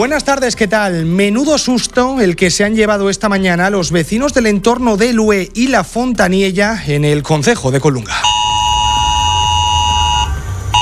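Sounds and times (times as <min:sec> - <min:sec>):
speech: 0:00.0 - 0:08.4
mobile phone emergency alert tone sent after an articulated truck overturned: 0:08.1 - 0:10.8.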